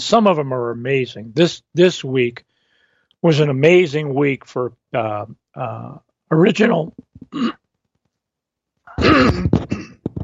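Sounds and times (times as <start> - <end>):
speech: 0.0 - 2.5, 3.2 - 7.6, 9.0 - 9.7
person clearing throat: 7.2 - 7.6, 8.9 - 10.2.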